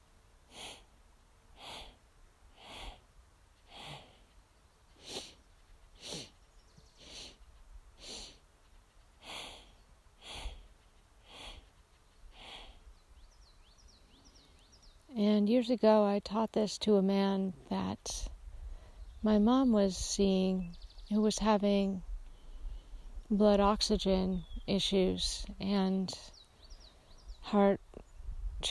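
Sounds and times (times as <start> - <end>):
person breathing rhythmically through the nose in short breathy sniffs: 0.5 - 0.9, 1.6 - 2.0, 2.6 - 3.0, 3.7 - 4.2, 5.0 - 5.4, 6.0 - 6.4, 7.0 - 8.4, 9.2 - 12.8
speech: 15.4 - 18.3, 19.2 - 22.1, 23.3 - 26.4, 27.4 - 27.8.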